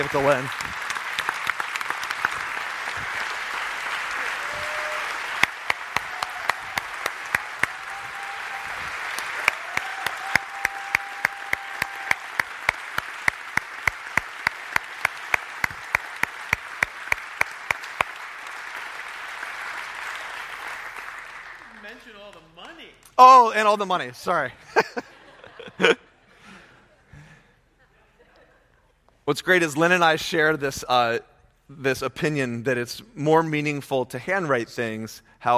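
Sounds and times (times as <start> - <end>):
speech: 0.0 - 0.7, 23.6 - 25.1, 25.8 - 26.0, 29.3 - 35.5
audience applause: 0.0 - 23.4
laughter: 24.6 - 29.0.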